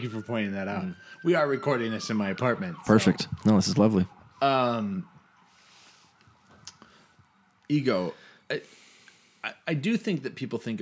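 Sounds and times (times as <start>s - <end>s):
speech: 0.0s - 5.1s, 7.7s - 8.8s, 9.4s - 10.8s
ambulance siren passing outside apartment: 0.0s - 8.4s
faint traffic outside: 0.0s - 10.8s.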